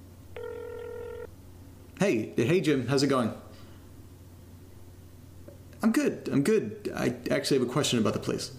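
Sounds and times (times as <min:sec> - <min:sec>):
faint low hum: 0:00.0 - 0:08.5
ringback tone on a phone line: 0:00.4 - 0:01.3
speech: 0:02.0 - 0:03.4, 0:05.9 - 0:08.5.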